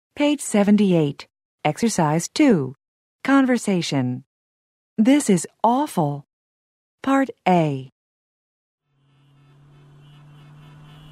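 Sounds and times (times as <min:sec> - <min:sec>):
speech: 0:00.2 - 0:04.3, 0:05.0 - 0:06.3, 0:07.0 - 0:07.9
heavy road traffic rumble of many cars: 0:09.0 - 0:11.1
sustained horn-like tone blaring over traffic: 0:09.0 - 0:11.1.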